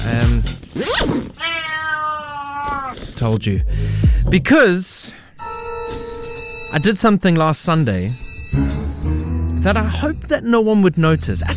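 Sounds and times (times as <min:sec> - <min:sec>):
speech: 0:00.0 - 0:01.3, 0:03.2 - 0:05.2, 0:06.7 - 0:08.9, 0:09.6 - 0:11.5
cat meowing and yowling: 0:01.4 - 0:03.1.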